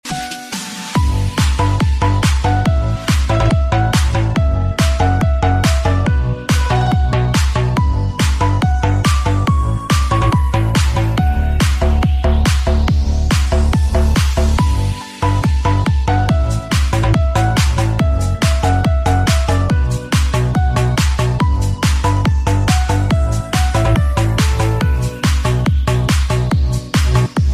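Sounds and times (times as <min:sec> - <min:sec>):
piano remix ringtone: 0:00.0 - 0:26.7.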